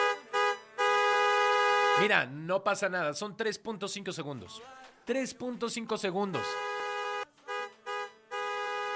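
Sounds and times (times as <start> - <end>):
car horn honking a rhythmic signal pattern: 0.0 - 2.2, 6.4 - 8.9
speech: 2.0 - 6.7.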